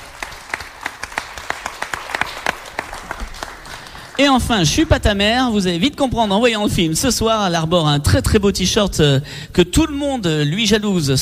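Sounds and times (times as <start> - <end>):
audience applauding: 0.0 - 5.2
speech: 4.2 - 11.2.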